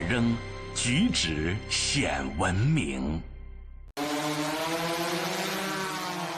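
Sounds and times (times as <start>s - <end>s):
speech: 0.1s - 3.3s
drone motor whining while hovering: 4.0s - 6.3s.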